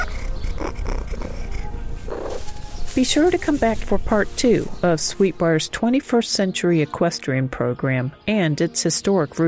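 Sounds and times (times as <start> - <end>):
barn cat purring at a college equestrian stable: 0.0 - 2.5
speech: 3.0 - 9.4.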